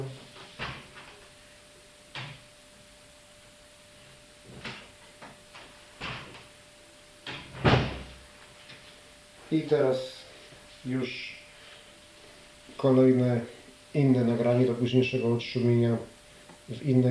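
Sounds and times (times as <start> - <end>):
door shutting thud: 7.3 - 8.2
speech: 9.5 - 10.2, 10.8 - 11.4, 12.8 - 16.1, 16.7 - 17.0.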